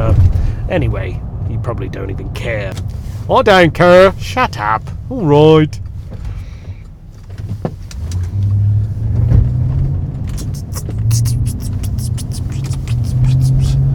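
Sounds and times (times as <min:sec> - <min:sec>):
low engine rumble from inside a moving car: 0:00.0 - 0:13.9
road noise on a road with many cars: 0:00.0 - 0:13.9
speech: 0:00.7 - 0:05.8
sharp clicks and ticks: 0:10.3 - 0:13.8.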